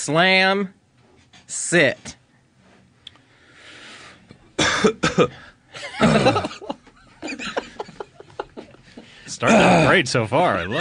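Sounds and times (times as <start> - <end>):
speech: 0.0 - 0.8, 1.5 - 2.2, 4.8 - 6.8, 9.3 - 10.7
harsh coughing fit: 4.6 - 6.7, 9.4 - 10.0
laughter: 5.7 - 9.9.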